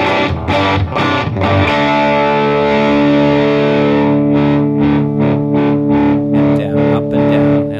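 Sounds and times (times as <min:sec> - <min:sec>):
heavily distorted electric guitar playing: 0:00.0 - 0:07.7.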